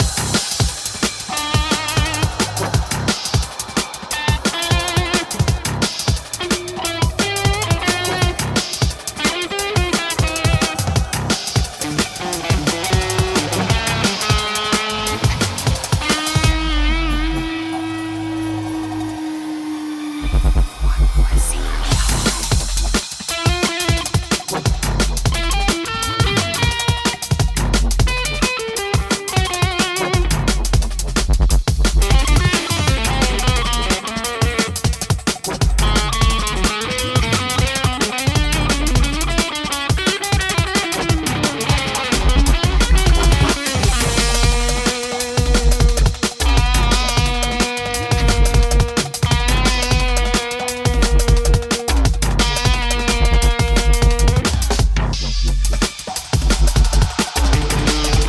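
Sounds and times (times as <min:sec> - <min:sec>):
guitar remix: 0:00.0 - 0:58.2.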